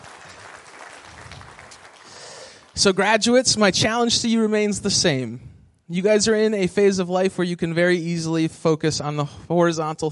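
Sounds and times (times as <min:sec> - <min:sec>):
crowd applauding: 0:00.0 - 0:03.0
speech: 0:02.8 - 0:10.1.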